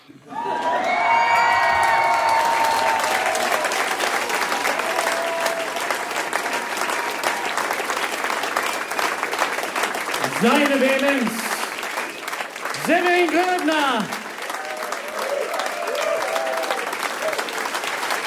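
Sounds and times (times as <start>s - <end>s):
large cabaret audience applause in Bocholt Germany: 0.0s - 18.2s
cabaret audience whoops and cheers: 0.3s - 4.0s, 4.6s - 7.7s, 14.4s - 17.5s
speech: 10.4s - 11.4s, 12.9s - 14.2s.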